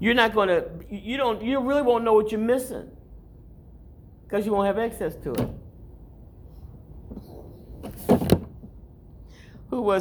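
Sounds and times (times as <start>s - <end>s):
speech: 0.0s - 3.0s, 4.3s - 5.6s, 9.7s - 9.9s
door thudding shut: 5.3s - 5.8s, 7.8s - 8.7s.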